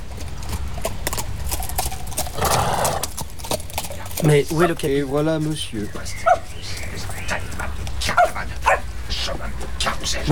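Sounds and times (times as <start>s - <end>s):
horse hooves clip-clopping on hard ground: 0.0s - 10.3s
horse whinnying: 1.5s - 4.7s
speech: 4.2s - 6.4s, 10.1s - 10.3s.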